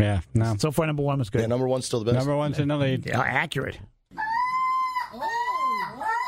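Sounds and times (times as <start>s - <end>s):
speech: 0.0s - 4.2s
person imitating a crow's call: 4.2s - 6.2s.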